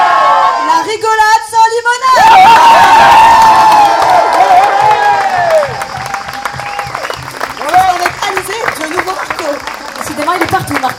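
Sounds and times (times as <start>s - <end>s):
crowd cheering in an ovation for second-place finishers on a podium: 0.0s - 0.8s, 2.1s - 10.9s
crowd applauding: 3.4s - 10.9s.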